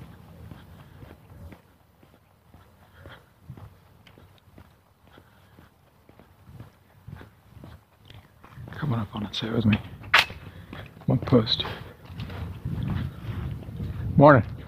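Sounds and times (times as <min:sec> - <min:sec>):
footsteps walking across a grass lawn: 0:00.0 - 0:14.6
speech: 0:08.8 - 0:09.9, 0:11.3 - 0:11.9, 0:14.2 - 0:14.5.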